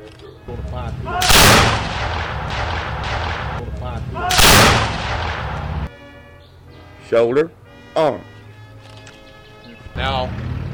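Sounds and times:
speech: 0.1s - 1.9s, 7.1s - 8.3s, 10.0s - 10.5s
steady noise: 0.5s - 5.9s
muzzle-loaded musket volleys fired on command during a drill demonstration: 1.2s - 5.9s.

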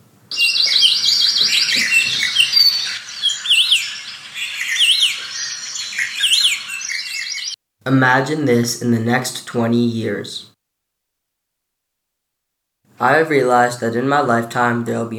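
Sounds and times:
many birds chirping and trilling in a Hawaii forest: 0.3s - 7.6s
speech: 7.9s - 10.5s, 13.0s - 15.1s.

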